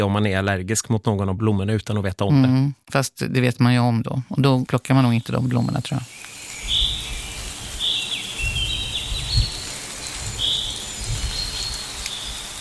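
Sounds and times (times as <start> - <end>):
speech: 0.0 - 6.3
birds chirping: 4.4 - 12.6
light midsummer rain pattering: 4.8 - 12.6.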